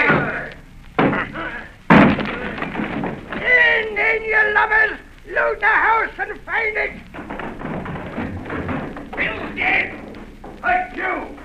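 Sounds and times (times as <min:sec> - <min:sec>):
commotion: 0:00.0 - 0:11.4
door being battered down: 0:01.0 - 0:04.0, 0:07.0 - 0:11.4
speech: 0:04.8 - 0:07.2.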